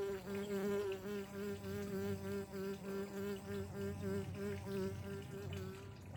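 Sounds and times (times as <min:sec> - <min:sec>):
bee flying back and forth buzzing at an insect hotel: 0:00.0 - 0:06.0.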